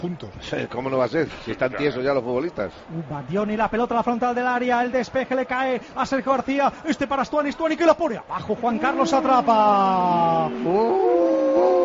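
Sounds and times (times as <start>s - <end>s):
speech: 0.0s - 11.8s
wolves howling: 8.8s - 11.8s.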